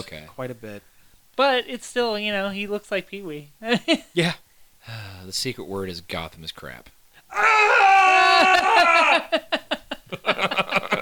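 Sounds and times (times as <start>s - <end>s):
speech: 0.0s - 10.6s
person screaming: 7.3s - 9.4s
laughter: 8.2s - 10.9s.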